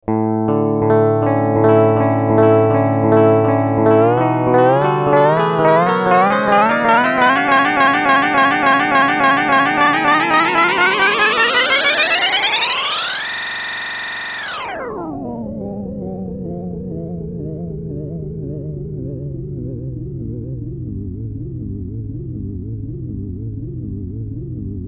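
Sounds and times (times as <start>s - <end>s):
delay effect with heavy feedback: 0.1s - 24.8s.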